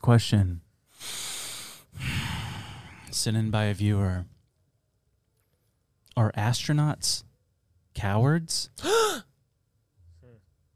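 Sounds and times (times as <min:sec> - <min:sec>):
speech: 0:00.1 - 0:01.2, 0:03.2 - 0:04.4, 0:06.2 - 0:07.3, 0:08.0 - 0:09.3
startled gasp: 0:01.0 - 0:03.1, 0:08.8 - 0:09.3.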